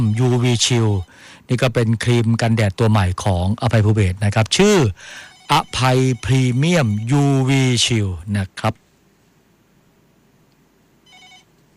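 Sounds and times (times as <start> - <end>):
speech: 0.0 - 8.8
steady low hum: 0.0 - 11.7
short bright high electronic telephone ring: 5.1 - 7.2, 11.0 - 11.5.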